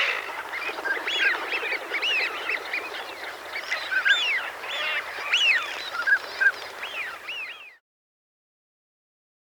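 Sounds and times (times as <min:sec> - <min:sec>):
flock of Northern pintails giving whistled piping and upward-sweeping calls: 0:00.0 - 0:05.8.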